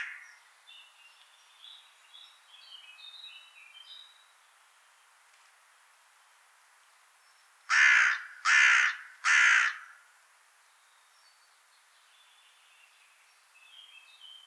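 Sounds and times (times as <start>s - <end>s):
carrion crow Corvus corone cawing: 0.0s - 0.2s, 7.7s - 10.0s.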